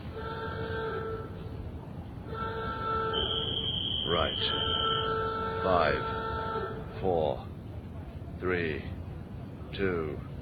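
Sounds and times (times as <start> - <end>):
constant low rumbling noise: 0.0 - 10.4
loud warning alarm before factory chimney demolition blast: 3.1 - 6.1
speech: 4.2 - 4.7, 5.6 - 6.2, 7.0 - 7.5, 8.4 - 9.0, 9.7 - 10.3.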